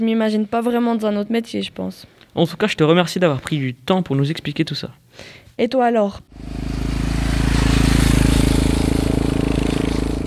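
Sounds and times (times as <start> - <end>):
speech: 0.0 - 6.6
Yamaha MT-09 motorcycle engine passing by: 6.3 - 10.2.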